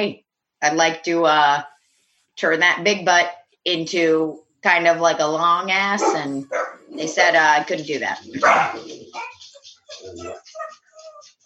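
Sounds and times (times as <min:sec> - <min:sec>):
speech: 0:00.0 - 0:01.7, 0:02.4 - 0:09.3, 0:09.9 - 0:10.7
dogs barking with yips and whiny tones: 0:05.9 - 0:11.4.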